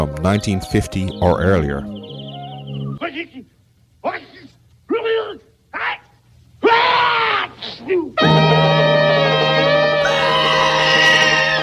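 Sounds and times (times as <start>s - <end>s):
speech: 0.0s - 2.0s, 3.0s - 6.0s, 7.8s - 9.3s
loud sustained burst of music: 8.2s - 11.6s
person letting out short wailing screams: 10.0s - 11.6s.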